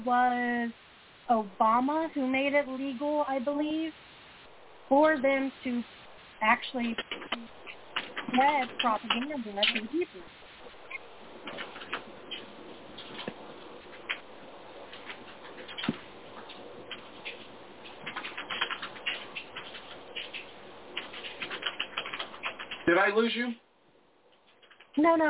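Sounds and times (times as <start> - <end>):
speech: 0.0 - 4.0, 4.9 - 7.6, 8.2 - 10.4, 22.9 - 23.6, 25.0 - 25.2
keyboard typing: 6.8 - 10.1, 10.9 - 13.3, 14.9 - 23.0, 24.4 - 25.1.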